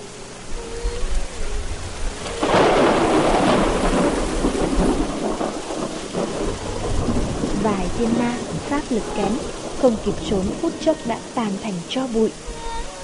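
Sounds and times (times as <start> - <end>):
heavy rain pouring: 0.0 - 13.0
thunder rumbling: 0.8 - 12.7
loud crack of thunder: 2.3 - 11.4
speech: 8.0 - 12.6.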